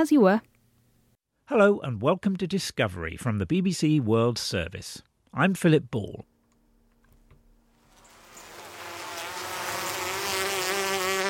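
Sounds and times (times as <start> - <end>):
speech: 0.0 - 0.5, 1.5 - 6.3
bees buzzing: 7.7 - 11.2.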